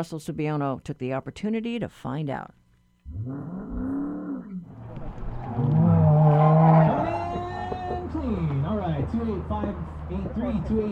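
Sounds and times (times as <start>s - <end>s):
speech: 0.0s - 3.6s, 9.1s - 10.8s
autocross race car tires screeching: 4.8s - 10.7s
autocross race car engines revving and roaring: 4.8s - 10.8s.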